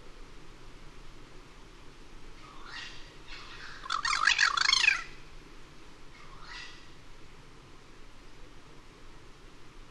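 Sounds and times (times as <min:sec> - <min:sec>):
soft steady hiss: 0:00.0 - 0:09.8
Cuban Crow giving raspy gurgling chattering notes: 0:02.4 - 0:05.2.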